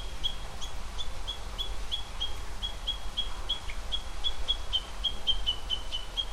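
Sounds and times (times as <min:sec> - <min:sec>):
Japanese bush warbler alarm call: 0:00.0 - 0:06.3.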